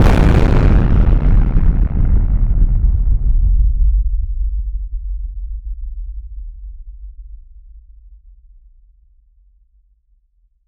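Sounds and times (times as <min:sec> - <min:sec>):
catastrophic nuclear bomb detonation: 0:00.0 - 0:04.2.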